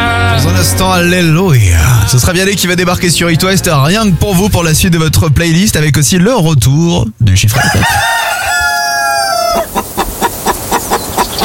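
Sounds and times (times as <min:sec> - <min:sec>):
speech: 0:00.7 - 0:08.2
rooster crowing: 0:07.5 - 0:09.9
hen clucking: 0:07.5 - 0:11.4.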